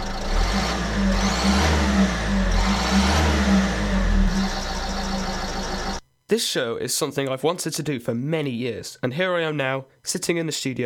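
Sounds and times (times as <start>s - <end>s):
car engine revving: 0.0s - 6.0s
speech: 6.3s - 10.8s.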